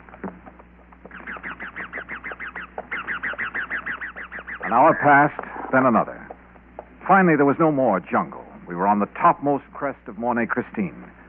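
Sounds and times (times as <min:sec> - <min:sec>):
wild parrots screeching: 0:01.0 - 0:05.6
speech: 0:04.7 - 0:06.2, 0:07.1 - 0:11.1.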